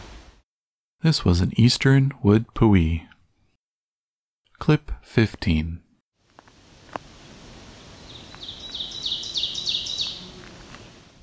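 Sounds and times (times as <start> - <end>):
speech: 1.0 - 3.1, 4.6 - 5.8
ovenbird song: 7.7 - 10.5.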